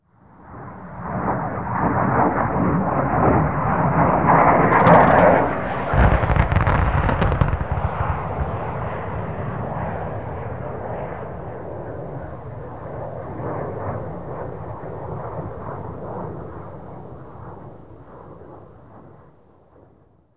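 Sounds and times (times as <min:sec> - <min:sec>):
jet flyover: 0:00.3 - 0:19.8.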